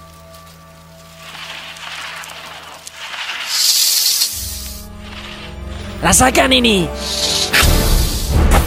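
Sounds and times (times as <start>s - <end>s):
snake hissing: 1.2s - 6.0s, 6.8s - 8.5s
speech: 6.0s - 7.3s.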